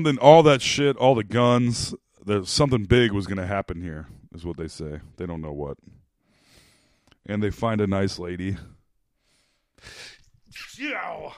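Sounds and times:
speech: 0.0 - 6.0, 7.2 - 8.8, 9.8 - 10.1, 10.8 - 11.3
soft breathy inhale: 6.2 - 7.1, 9.2 - 10.2.

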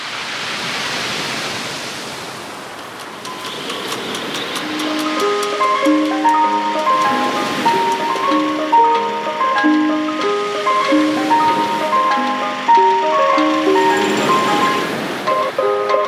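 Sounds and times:
wind: 0.0 - 16.0
ice cream van chime song: 3.2 - 16.0.

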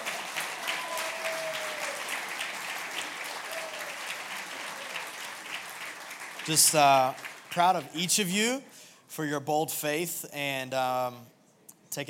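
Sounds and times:
gathered group applauding for people about to go on a trip: 0.0 - 8.1
speech: 6.4 - 12.0.

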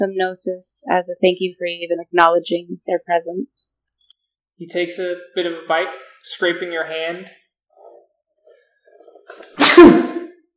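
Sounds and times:
speech: 0.0 - 3.8, 4.6 - 7.4, 9.3 - 10.2
loud sneeze: 9.3 - 10.4.

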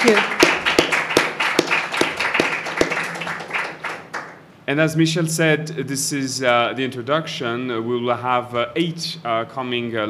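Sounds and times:
speech: 0.0 - 0.4, 4.7 - 10.0
audience applauding: 0.0 - 4.4
louder sharp claps: 0.0 - 4.4.

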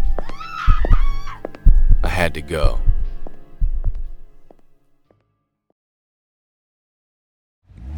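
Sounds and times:
dull low thuds: 0.0 - 4.7
faint drawn-out scream from a room in a building: 0.2 - 1.5
speech: 2.3 - 2.9.

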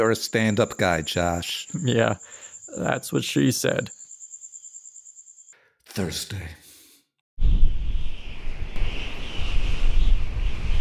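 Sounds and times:
speech: 0.0 - 4.0, 6.0 - 6.6
strong wind blowing in gusts: 7.4 - 10.7.

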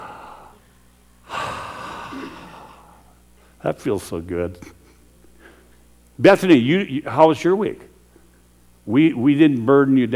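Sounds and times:
deep inhale: 0.0 - 3.6, 5.3 - 5.9
speech: 3.6 - 4.8, 6.2 - 7.9, 8.8 - 10.1.

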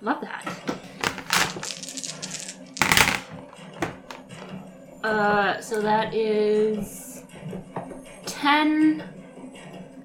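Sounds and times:
speech: 0.0 - 0.7, 5.1 - 7.0, 8.4 - 9.1
damage dice rolling on a hard table: 0.5 - 4.5.

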